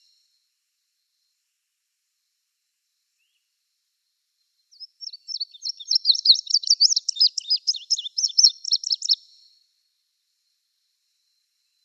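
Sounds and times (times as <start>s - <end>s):
Indigo bunting singing paired chirps: 4.7s - 9.5s.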